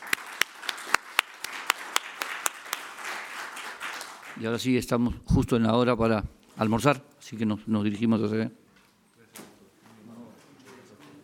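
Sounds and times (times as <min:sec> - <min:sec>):
audience applause: 0:00.0 - 0:04.4
speech: 0:04.4 - 0:08.6.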